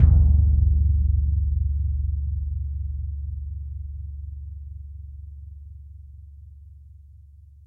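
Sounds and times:
concert bass hit: 0.0 - 5.8.

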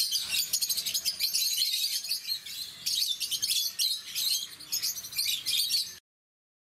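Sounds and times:
rosy-faced lovebird calls: 0.0 - 6.0.

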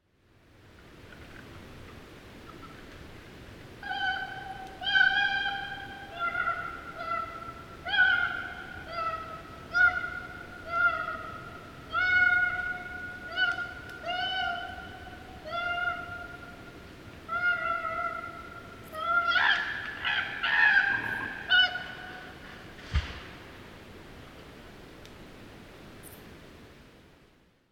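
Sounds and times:
koala sounds: 3.8 - 22.7.

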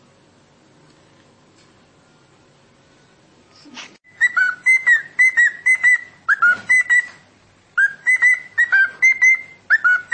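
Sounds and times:
cockatiel giving short bright whistled calls: 4.1 - 7.2, 7.8 - 10.1.

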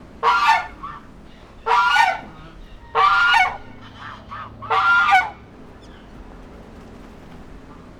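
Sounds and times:
goose: 0.2 - 6.2.

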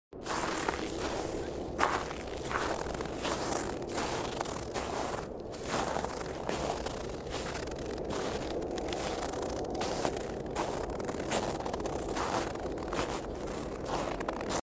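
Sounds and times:
footsteps walking in snow: 0.2 - 14.6.

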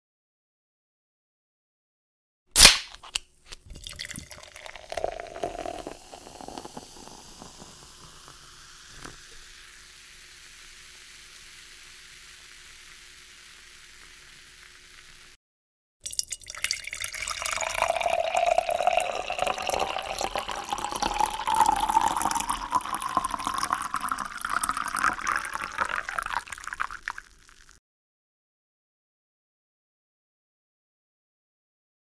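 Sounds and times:
soda pouring: 3.5 - 15.4, 16.0 - 27.8.

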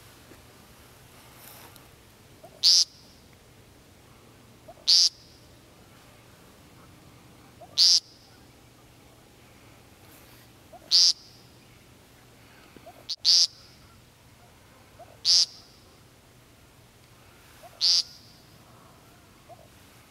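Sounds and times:
woodcock calls: 2.4 - 3.2, 4.6 - 5.4, 7.5 - 9.3, 10.7 - 11.9, 12.5 - 16.1, 17.2 - 19.8.

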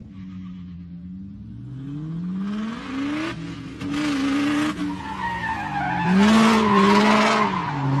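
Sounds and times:
rare car drift riser: 3.9 - 7.9.

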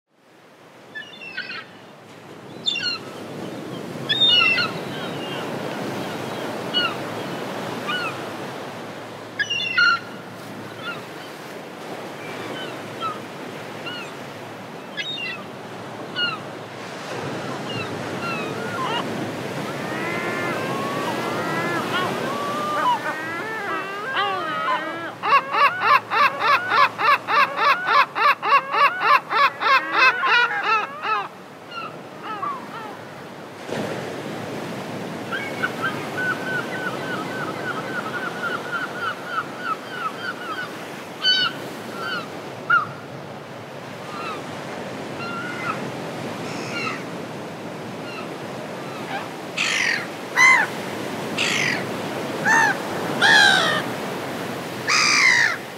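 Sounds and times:
seagull calling: 0.9 - 1.7, 2.5 - 8.3, 9.4 - 10.2, 14.8 - 15.5, 16.1 - 16.5, 17.2 - 33.0, 35.3 - 43.0, 44.0 - 47.1, 48.0 - 55.7.

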